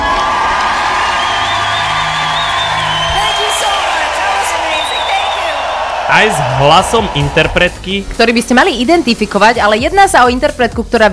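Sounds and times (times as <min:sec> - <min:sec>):
large audience applauding: 0:00.0 - 0:08.1
speech: 0:06.1 - 0:11.1.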